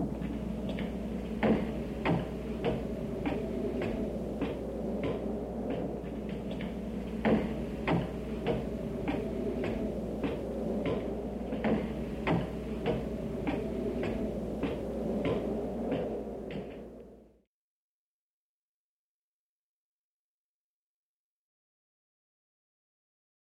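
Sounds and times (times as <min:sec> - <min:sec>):
horror footsteps: 0:00.1 - 0:16.9.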